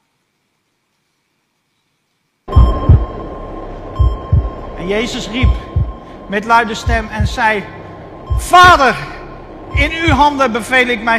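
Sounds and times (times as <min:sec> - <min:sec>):
faint steady electronic hum: 0:02.5 - 0:11.1
slow heartbeat sound effect lub-dub thumps: 0:02.5 - 0:11.1
speech: 0:04.8 - 0:05.6, 0:06.3 - 0:09.1, 0:09.7 - 0:11.1.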